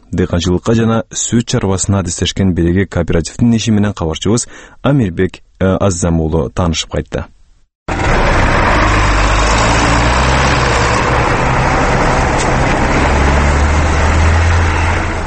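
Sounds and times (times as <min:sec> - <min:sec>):
speech: 0:00.1 - 0:07.3
John Deere wheeled tractor engine ploughing a field at the edge of a village: 0:07.9 - 0:15.2.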